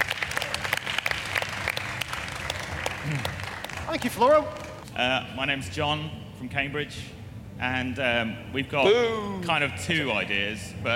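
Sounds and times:
room full of people applauding: 0.0 - 4.8
speech: 3.9 - 10.9.

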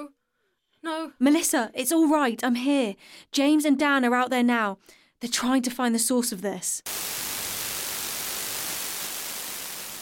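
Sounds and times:
speech: 0.8 - 7.3
radio static hissing: 6.9 - 10.0.

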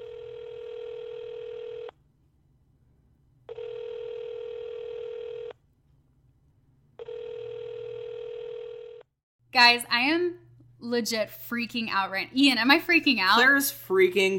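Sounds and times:
outgoing phone call ringback tone: 0.0 - 1.9, 3.5 - 5.5, 7.0 - 9.0
speech: 9.6 - 14.3.

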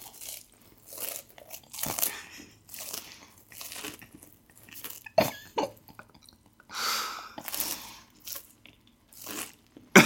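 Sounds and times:
crunchy food being chewed: 0.0 - 6.6, 7.3 - 10.0
breathing: 6.7 - 8.1.

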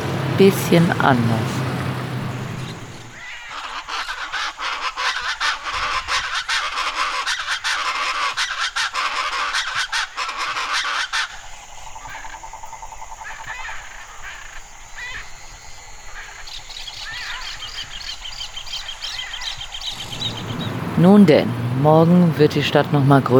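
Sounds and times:
steady hum: 0.0 - 3.8, 11.4 - 23.3
waterfowl calling with goose-like honks at a lake: 0.0 - 11.3, 19.9 - 23.3
chattering birds at an evening lake: 0.0 - 23.3
dense chorus of frogs at an evening lake: 0.0 - 23.3
speech: 0.4 - 1.6, 21.2 - 23.3.

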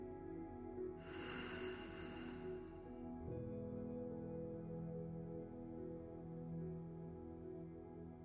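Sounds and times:
calm steady tones: 0.0 - 8.2
breathing in through nose, out through mouth: 1.0 - 2.9.

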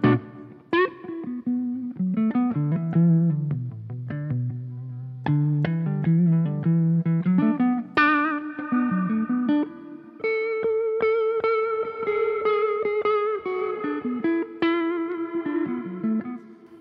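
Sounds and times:
electric guitar through an effects processor with reverb, played on stage: 0.0 - 16.7.

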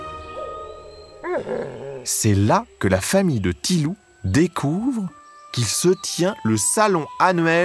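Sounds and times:
wolves yipping and whining in a forest: 0.0 - 2.1
low rumbling forest ambience: 0.0 - 7.6
speech: 1.2 - 7.6.

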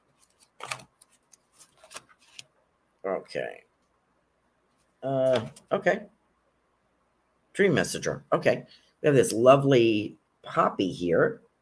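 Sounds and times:
deck of oracle cards being shuffled: 0.1 - 2.5
speech: 3.0 - 3.7, 5.0 - 6.2, 7.6 - 11.4.

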